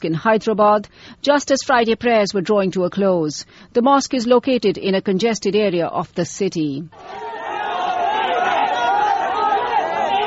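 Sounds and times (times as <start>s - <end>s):
speech: 0.0s - 7.3s
angry crowd shouting slogans outside a mosque after a bomb explosion: 7.0s - 10.2s.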